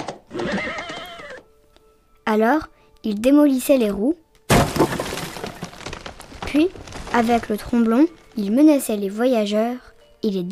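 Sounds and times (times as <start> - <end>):
horse giving a shrill wavering whinny: 0.3 - 1.5
speech: 2.3 - 4.2, 6.5 - 10.4.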